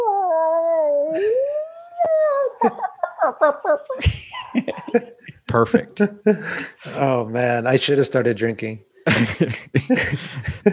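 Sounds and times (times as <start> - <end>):
man doing a wavering whale-call impression: 0.0 - 2.6
man's short rhythmic hooting yelps: 0.0 - 5.0
laughter: 2.1 - 5.4, 9.1 - 10.7
speech: 3.4 - 10.7.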